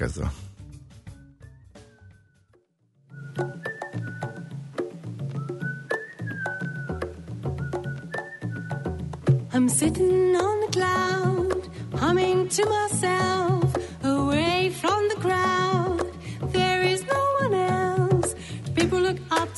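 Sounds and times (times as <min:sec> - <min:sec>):
speech: 0:00.0 - 0:00.4, 0:09.6 - 0:11.3, 0:12.0 - 0:13.7
bouncy bass and percussion groove: 0:00.0 - 0:02.5, 0:03.2 - 0:19.5
bright whistled melody: 0:01.4 - 0:09.4.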